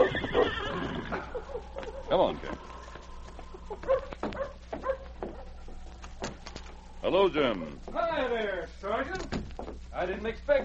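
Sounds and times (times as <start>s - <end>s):
dog barking and whimpering in front of a constable's office in Selkirk: 0.0s - 2.3s, 3.5s - 5.7s
low steady hum: 0.0s - 10.6s
speech: 2.1s - 2.7s, 7.1s - 9.4s, 10.0s - 10.6s.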